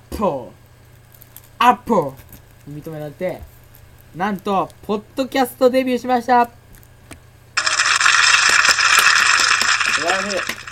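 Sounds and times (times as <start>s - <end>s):
speech: 0.2s - 0.6s, 1.6s - 3.5s, 4.1s - 6.6s, 10.1s - 10.6s
weak, unenthusiastic applause: 7.6s - 10.7s.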